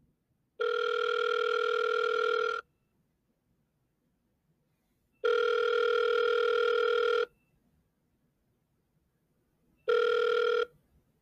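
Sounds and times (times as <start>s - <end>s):
telephone ringing on the line with buzzy tones: 0.6s - 2.7s, 5.2s - 7.4s, 9.8s - 10.8s.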